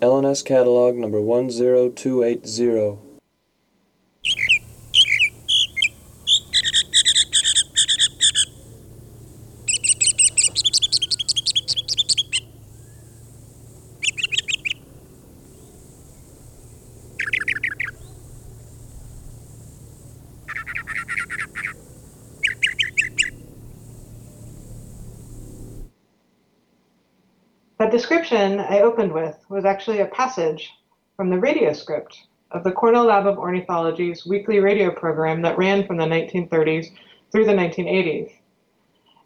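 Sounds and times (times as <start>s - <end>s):
speech: 0.0s - 3.1s, 28.3s - 38.4s
faint low hum: 4.2s - 25.9s
mockingbird song in a 1935 archival field recording from Florida: 4.2s - 25.9s.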